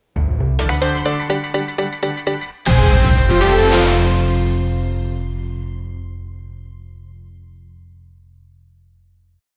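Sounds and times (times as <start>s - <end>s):
dramatic intro music: 0.4s - 7.4s.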